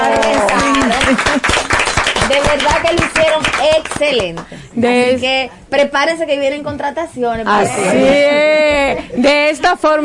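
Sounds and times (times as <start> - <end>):
crowd applauding: 0.0 - 4.5
speech: 1.1 - 1.4, 2.4 - 10.0.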